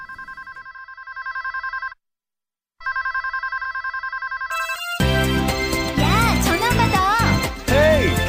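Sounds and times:
telephone ringing electronically: 0.0s - 2.0s, 2.8s - 5.2s
music: 4.6s - 8.2s.

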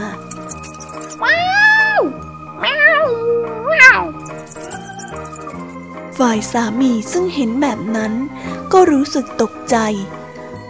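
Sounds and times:
soft music: 0.0s - 10.6s
cat growling and snarling: 2.6s - 4.2s
speech: 6.2s - 10.2s.

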